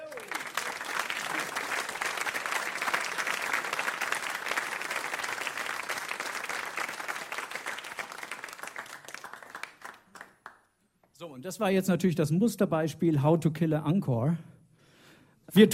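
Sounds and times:
large audience applause: 0.0s - 10.6s
speech: 11.4s - 14.5s.

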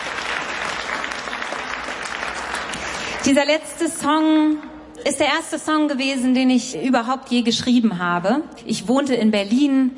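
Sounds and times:
audience applause: 0.0s - 3.3s
speech: 3.2s - 9.9s.

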